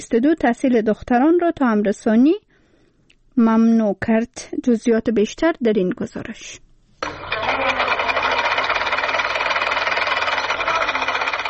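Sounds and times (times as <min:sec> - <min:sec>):
speech: 0:00.0 - 0:02.4, 0:03.4 - 0:06.6
sewing machine running in a tailoring workshop in Kabul: 0:07.0 - 0:11.4.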